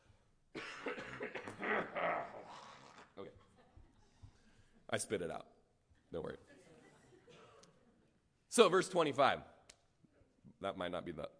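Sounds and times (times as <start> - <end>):
person coughing: 0.6 - 2.5
throat clearing: 0.6 - 3.1
speech: 4.9 - 5.5, 6.1 - 6.5, 8.6 - 9.5, 10.6 - 11.3.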